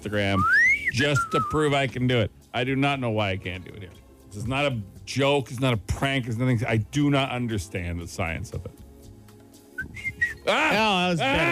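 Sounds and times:
speech: 0.0 - 8.8, 10.4 - 11.4
person whistling short thin peeps: 0.4 - 1.7, 9.7 - 10.5
loud strained wavering vocal squeal: 9.8 - 10.5.

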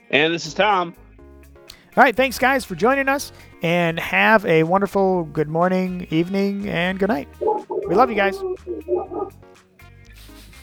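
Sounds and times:
speech: 0.1 - 1.0, 2.0 - 9.6
dog barking: 7.2 - 9.4.

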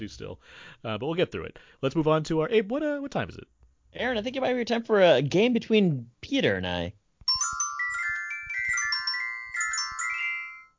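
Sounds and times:
speech: 0.0 - 7.0
bright electronic ringtone-style jingle with synth notes and percussion: 7.3 - 10.7.

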